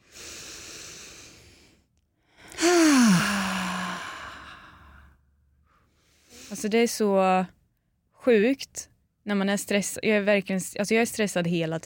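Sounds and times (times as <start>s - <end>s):
person taking a deep breath: 0.0s - 6.6s
speech: 6.5s - 7.6s, 8.2s - 11.8s.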